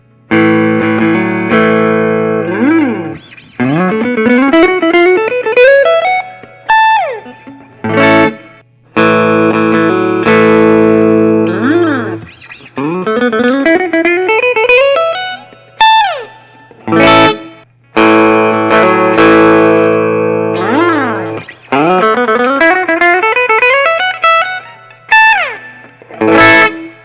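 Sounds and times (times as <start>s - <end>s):
Gibson chambered 58 Les Paul electric guitar: 0.0s - 27.0s.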